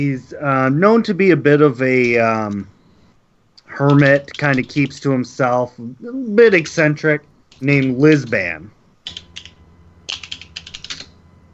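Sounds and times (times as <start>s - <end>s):
speech: 0.0s - 2.7s, 3.7s - 9.2s
typing on a computer keyboard: 3.9s - 5.0s, 9.0s - 11.1s.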